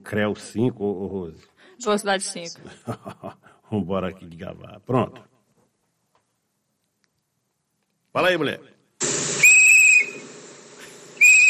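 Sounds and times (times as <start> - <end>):
speech: 0.1 - 5.3, 8.2 - 8.8
laughter: 2.6 - 3.5
shrill high-pitched whistle blasts: 9.2 - 10.4, 11.2 - 11.4.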